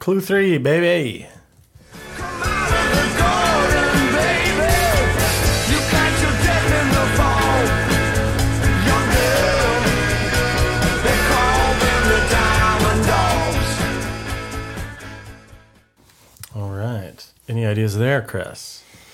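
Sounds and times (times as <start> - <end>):
speech: 0.0 - 1.4, 17.5 - 18.8
rock song with singing voice over driving guitars and drums: 1.9 - 15.5.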